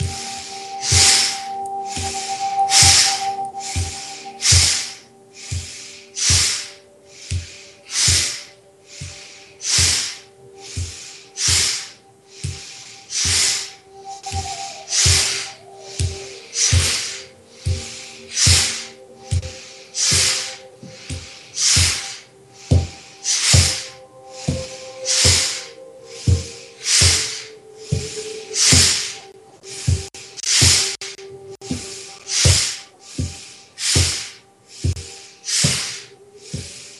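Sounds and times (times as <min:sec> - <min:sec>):
low sustained tone: 0:00.0 - 0:36.9
slow breathing in and out: 0:00.0 - 0:36.9.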